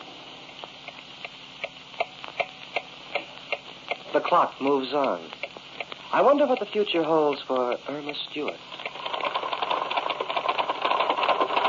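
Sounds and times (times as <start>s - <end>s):
speech: 4.2s - 5.4s, 6.1s - 8.7s
typewriter typing: 8.8s - 11.6s.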